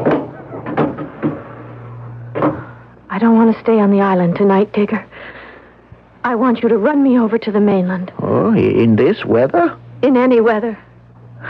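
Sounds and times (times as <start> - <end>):
door being handled and shut: 0.0 - 1.7
steady low hum: 0.0 - 11.4
speech: 3.2 - 5.4, 6.2 - 11.4.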